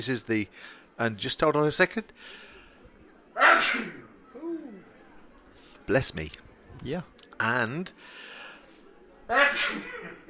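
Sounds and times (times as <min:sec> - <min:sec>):
speech: 0:00.0 - 0:02.5, 0:03.6 - 0:04.0, 0:05.9 - 0:08.3, 0:09.3 - 0:10.2
person sneezing: 0:03.4 - 0:04.0, 0:09.3 - 0:10.2.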